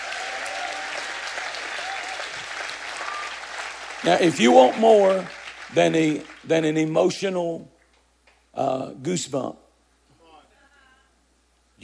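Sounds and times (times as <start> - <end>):
audience clapping in sustained applause: 0.0 - 6.9
speech: 4.0 - 7.7, 8.6 - 9.6.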